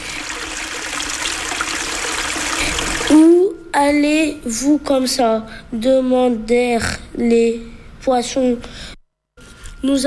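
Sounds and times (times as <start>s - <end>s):
water flowing in a stream: 0.0s - 3.2s
speech: 3.9s - 8.9s, 9.8s - 10.0s.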